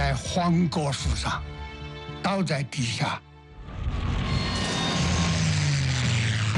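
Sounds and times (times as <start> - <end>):
speech: 0.4 - 3.3
warplane engines droning overhead in an air raid: 3.5 - 6.5.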